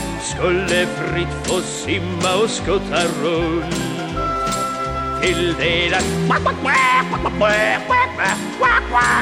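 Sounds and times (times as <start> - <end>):
steady instrumental music with a low bass line: 0.0 - 9.2
speech: 0.4 - 4.2, 5.2 - 9.2
duck quacking: 6.3 - 9.2.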